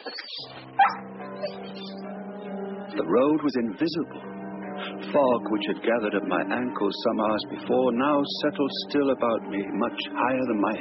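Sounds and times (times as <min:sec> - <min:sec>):
dog whining: 0:00.1 - 0:01.9
speech: 0:03.0 - 0:04.3, 0:05.0 - 0:10.8.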